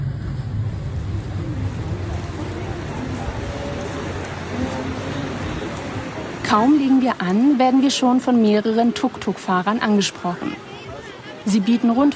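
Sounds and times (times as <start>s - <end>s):
wind noise: 0.0s - 6.9s
continuous wash of water: 0.0s - 12.1s
ferry engine rumble during a crossing from a harbor to Hormuz Island: 0.0s - 12.1s
speech: 6.5s - 10.7s, 11.4s - 12.1s.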